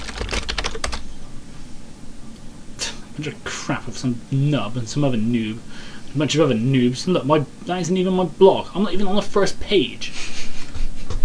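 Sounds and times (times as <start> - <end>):
typing on a computer keyboard: 0.0 - 1.0
low steady hiss: 1.0 - 10.8
speech: 3.2 - 10.3.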